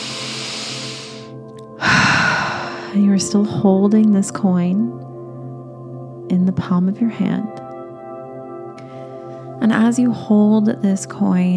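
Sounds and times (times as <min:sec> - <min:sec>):
deep breath during a guided breathwork exercise: 0:00.0 - 0:03.0, 0:08.8 - 0:09.6
soft tonal music: 0:00.0 - 0:11.5
speech: 0:03.2 - 0:05.1, 0:06.3 - 0:07.6, 0:09.6 - 0:11.5.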